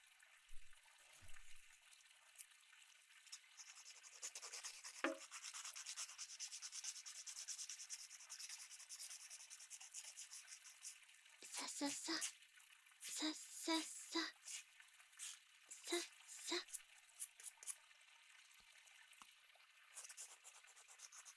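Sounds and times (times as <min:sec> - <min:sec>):
nail file scraping back and forth across fingernails: 0:03.6 - 0:11.0, 0:11.6 - 0:12.3, 0:13.8 - 0:14.6, 0:15.2 - 0:17.8, 0:20.0 - 0:21.3
speech: 0:11.8 - 0:12.4.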